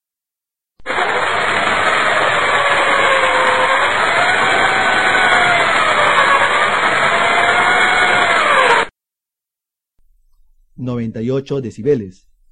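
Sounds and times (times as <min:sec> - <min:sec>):
power drill running: 0:00.8 - 0:08.9
speech: 0:11.1 - 0:12.3.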